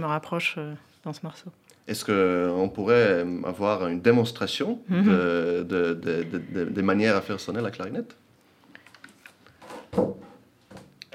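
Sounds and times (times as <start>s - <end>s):
speech: 0.0s - 8.2s
wooden chairs scraping and knocking as they are shifted: 9.6s - 10.9s.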